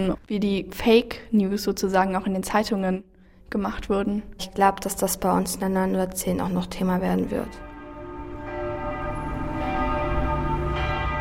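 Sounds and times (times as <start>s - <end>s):
speech: 0.0s - 7.7s
church bells pealing: 6.4s - 11.1s.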